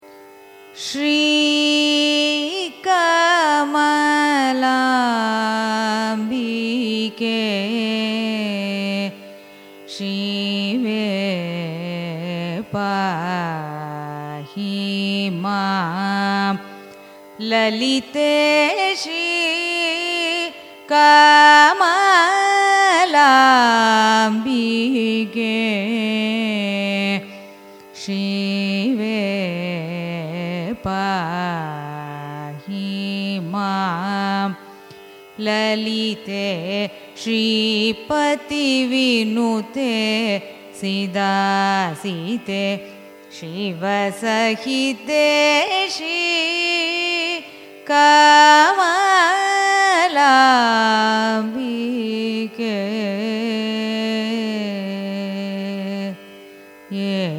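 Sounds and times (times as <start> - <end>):
carnatic raga music: 0.0 - 57.3.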